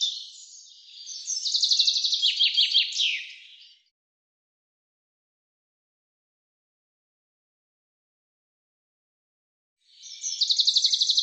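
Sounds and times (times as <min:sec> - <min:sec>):
common chaffinch song trill: 0:00.0 - 0:03.9, 0:09.9 - 0:11.2.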